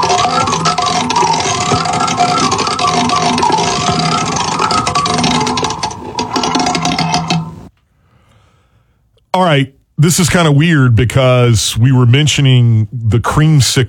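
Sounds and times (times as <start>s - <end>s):
prize wheel spinning with rattling clicks: 0.0s - 7.7s
speech: 9.5s - 13.8s.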